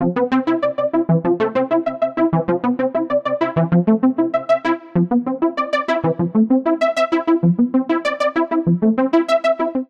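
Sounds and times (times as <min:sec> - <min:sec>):
accompaniment music in A minor at 97 bpm: 0:00.0 - 0:09.8.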